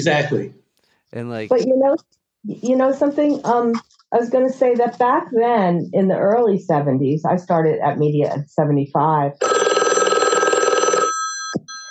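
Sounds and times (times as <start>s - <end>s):
speech: 0.0s - 9.6s
telephone bell ringing with a metallic trill: 9.4s - 11.8s.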